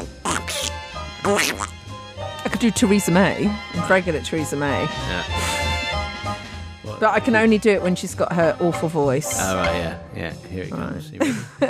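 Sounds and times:
voice imitating cartoon duck quacking: 0.0s - 1.8s
speech: 1.2s - 1.8s, 2.6s - 5.5s, 7.0s - 11.6s.

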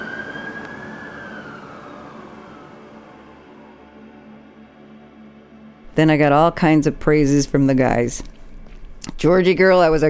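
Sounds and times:
police car siren wailing as the car speeds past: 0.0s - 5.2s
speech: 6.0s - 8.3s, 9.2s - 10.0s.

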